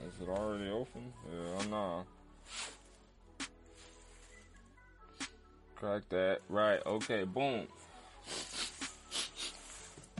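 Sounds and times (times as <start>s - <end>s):
speech: 0.2s - 2.8s, 5.8s - 8.4s
short breathy nasal sniffs and snorts: 8.2s - 9.6s.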